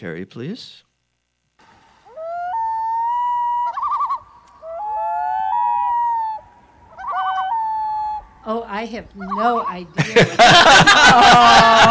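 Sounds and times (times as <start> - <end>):
speech: 0.0 - 0.9, 8.4 - 11.8
common loon wailing call: 2.0 - 8.6, 9.2 - 9.9
laughter: 10.0 - 11.8.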